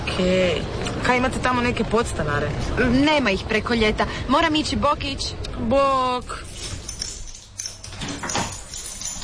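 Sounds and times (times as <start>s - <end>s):
speech: 0.2s - 6.7s
keys rattling and scraping in a door lock: 6.4s - 9.2s.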